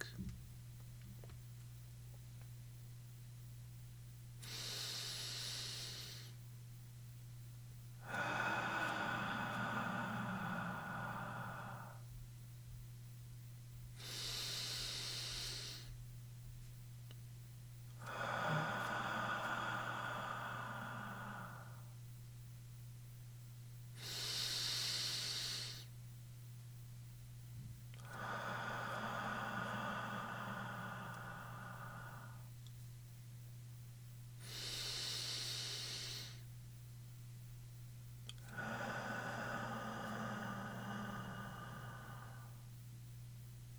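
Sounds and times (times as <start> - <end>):
low steady hum: 0.0 - 43.7
slow deep breathing close to the microphone: 4.4 - 6.4, 8.0 - 12.2, 13.9 - 16.0, 18.0 - 22.1, 23.9 - 25.9, 28.0 - 32.6, 34.4 - 36.5, 38.3 - 42.9.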